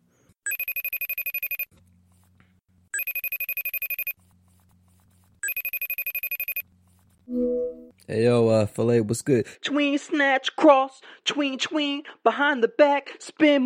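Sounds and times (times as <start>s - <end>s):
telephone ringing on an outgoing call: 0.5s - 1.7s, 3.0s - 4.2s, 5.4s - 6.6s
quieter low-pitched tones between rings: 7.3s - 7.9s
speech: 7.3s - 13.6s.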